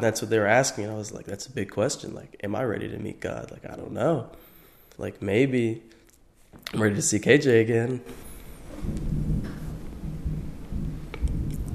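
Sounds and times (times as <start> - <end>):
speech: 0.0 - 9.3
thunder rumbling: 8.5 - 11.7.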